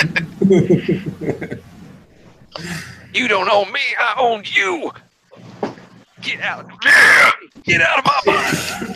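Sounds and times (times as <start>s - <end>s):
laughter: 0.0s - 1.7s, 8.2s - 8.9s
speech: 0.2s - 1.7s, 2.6s - 5.0s, 6.3s - 8.9s
man on the toilet yelling and straining: 6.8s - 8.5s.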